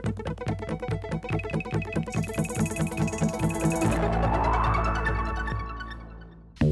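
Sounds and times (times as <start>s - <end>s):
rapid pulsing synthesized electronic notes in a video game logo sting: 0.2s - 6.3s
rising synthesized sweep: 1.3s - 6.5s.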